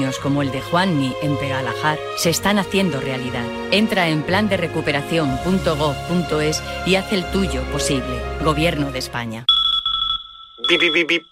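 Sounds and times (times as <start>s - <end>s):
speech: 0.0s - 9.6s, 10.7s - 11.3s
steady high electronic beep tone: 9.5s - 11.3s.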